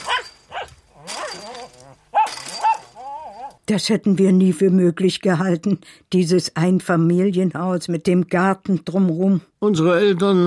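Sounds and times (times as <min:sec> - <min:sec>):
poodle barking on a wire garden fence: 0:00.0 - 0:03.6
poodle whining with drawn-out yelps: 0:00.0 - 0:03.6
speech: 0:03.7 - 0:10.4.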